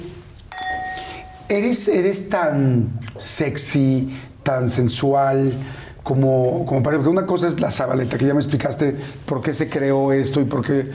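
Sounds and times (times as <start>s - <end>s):
glasses clinking in a toast: 0.5s - 1.6s
speech: 1.5s - 10.9s.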